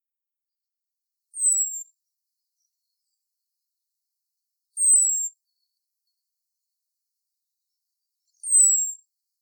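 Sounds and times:
common blackbird Turdus merula calling thin high whistles: 1.4s - 1.9s, 4.8s - 5.3s, 8.4s - 9.0s.

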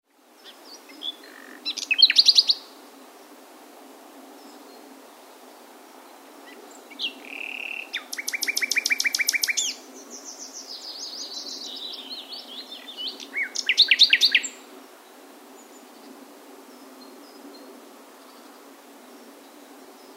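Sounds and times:
Common nightingale Luscinia megarhynchos singing varied phrases: 0.4s - 2.7s, 6.5s - 14.6s.

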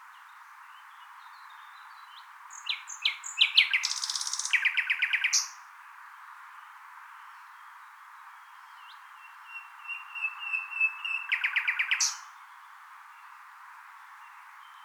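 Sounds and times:
common nightingale Luscinia megarhynchos singing: 1.4s - 5.6s, 8.6s - 12.4s.

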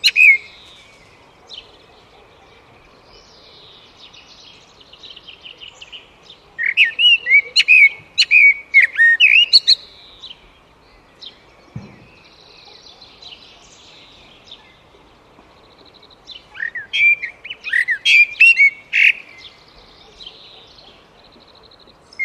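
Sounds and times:
Eurasian blackbird singing: 0.0s - 22.2s
low thump: 11.7s - 12.2s.

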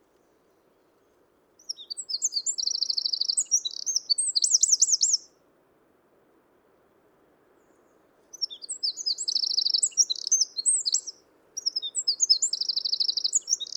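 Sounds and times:
Eurasian wren Troglodytes troglodytes song of trills and warbling: 1.6s - 5.3s, 8.3s - 13.7s.

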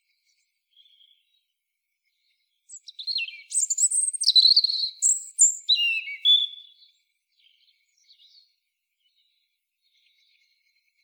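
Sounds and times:
European robin singing, Erithacus rubecula: 2.7s - 7.0s.

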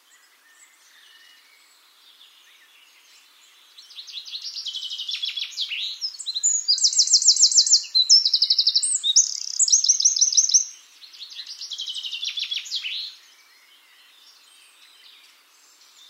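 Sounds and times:
Eurasian wren Troglodytes troglodytes singing high rattling trills: 3.8s - 14.3s.

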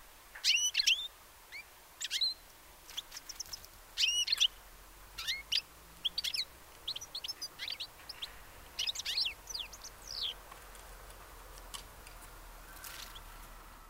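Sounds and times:
European goldfinch Carduelis carduelis twittering calls: 0.4s - 4.6s, 5.2s - 10.4s.

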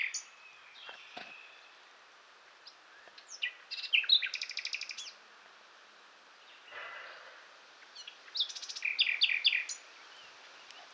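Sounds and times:
common nightingale Luscinia megarhynchos singing: 0.0s - 5.2s, 7.8s - 10.9s.

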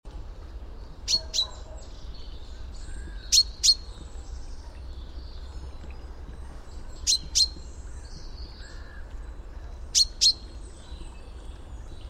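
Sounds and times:
low steady background hum: 0.1s - 12.0s
Common chaffinch Fringilla coelebs calls: 0.7s - 12.0s.

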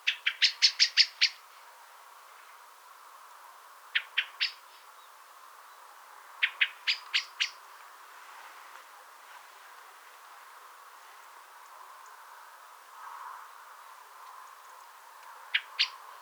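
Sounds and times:
Common blackbird Turdus merula giving chink calls: 0.0s - 1.4s, 4.0s - 4.6s, 6.4s - 7.6s, 15.5s - 16.0s.

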